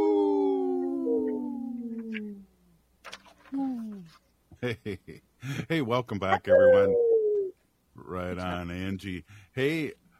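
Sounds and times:
wolf howling: 0.0s - 2.3s, 6.3s - 7.5s
speech: 4.6s - 7.1s, 8.0s - 10.0s.

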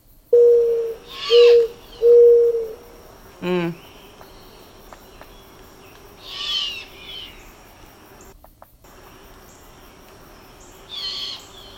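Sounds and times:
mourning dove cooing: 0.3s - 8.2s.

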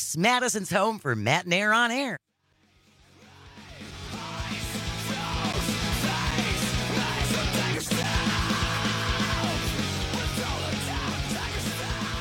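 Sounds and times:
speech: 0.0s - 2.3s
rock music with heavy drums and distorted guitars: 2.6s - 12.1s.

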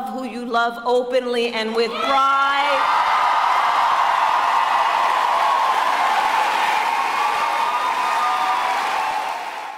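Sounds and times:
speech: 0.4s - 3.1s
large rally crowd cheering: 1.9s - 9.7s
large rally crowd applauding: 2.8s - 9.7s.

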